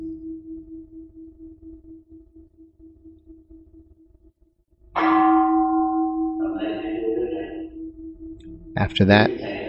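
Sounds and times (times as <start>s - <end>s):
meditation bell struck and ringing: 5.0s - 8.7s
speech: 8.8s - 9.6s.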